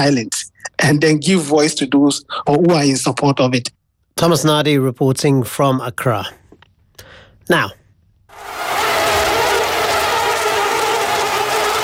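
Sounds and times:
speech: 0:00.0 - 0:06.4, 0:07.5 - 0:07.8
mosquitoes buzzing: 0:08.3 - 0:11.8.

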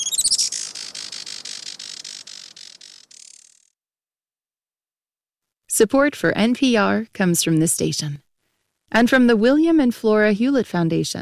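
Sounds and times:
Juan Fernandez firecrown hummingbird calling: 0:00.0 - 0:03.7
speech: 0:05.8 - 0:08.2, 0:08.9 - 0:11.1.

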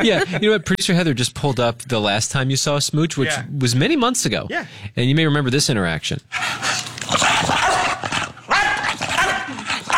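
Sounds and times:
speech: 0:00.0 - 0:07.7
dog barking raspily while playing: 0:06.3 - 0:09.9.

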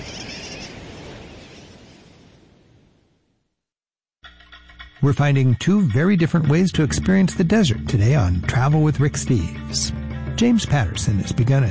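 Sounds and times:
colony of sooty terns calling: 0:00.0 - 0:01.8
speech: 0:05.0 - 0:11.7.

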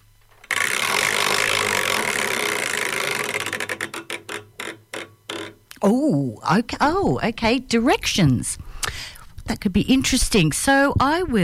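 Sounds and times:
prize wheel spinning: 0:00.4 - 0:05.6
speech: 0:05.8 - 0:11.4.

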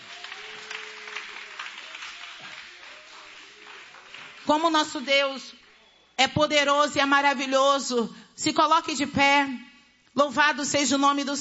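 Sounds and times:
church audience clapping: 0:00.0 - 0:05.0
speech: 0:04.5 - 0:05.6, 0:06.2 - 0:11.3.

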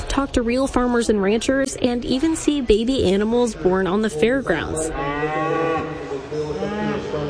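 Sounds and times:
speech: 0:00.2 - 0:06.4
cow mooing at a fair in Grand Island, Nebraska: 0:04.9 - 0:07.2.

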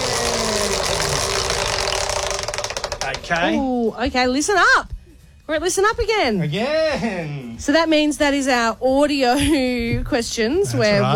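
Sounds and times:
prize wheel spinning with ratcheting clicks in a trivia game: 0:00.0 - 0:03.6
speech: 0:03.2 - 0:04.9, 0:05.5 - 0:11.1.

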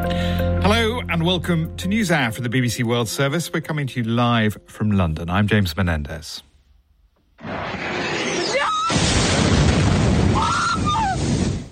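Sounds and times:
speech: 0:00.6 - 0:06.5
explosion in a city during missile attack: 0:07.4 - 0:11.7.

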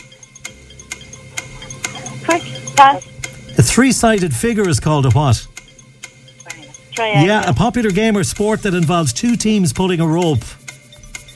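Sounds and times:
faint hum: 0:00.0 - 0:08.2
quiz countdown clock ticking: 0:00.0 - 0:11.3
speech: 0:02.8 - 0:05.5, 0:07.0 - 0:10.6.

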